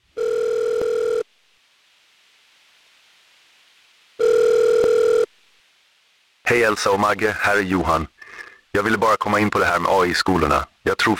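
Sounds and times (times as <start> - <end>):
faint hiss: 0.0 - 11.1
telephone ringing tone for an incoming call: 0.2 - 1.2, 4.2 - 5.3
speech: 6.5 - 11.1.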